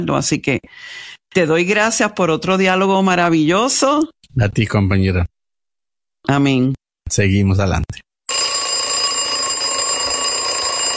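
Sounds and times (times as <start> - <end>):
speech: 0.0 - 5.3, 6.2 - 8.1
alarm clock ringing: 8.3 - 10.9.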